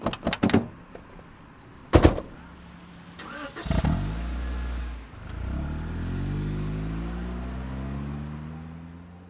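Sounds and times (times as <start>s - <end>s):
car doors shutting: 0.0s - 1.2s, 1.9s - 2.4s
car engine starting and revving as the car pulls away: 2.8s - 9.2s.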